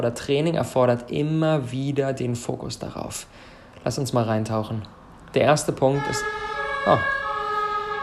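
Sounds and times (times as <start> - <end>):
speech: 0.0 - 7.2
fire engine siren wailing outside: 5.8 - 8.0.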